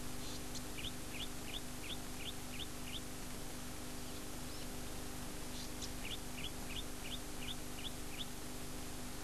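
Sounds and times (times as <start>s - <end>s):
steady low hum: 0.0s - 9.2s
golden-headed cisticola singing: 0.2s - 3.2s, 5.4s - 8.4s.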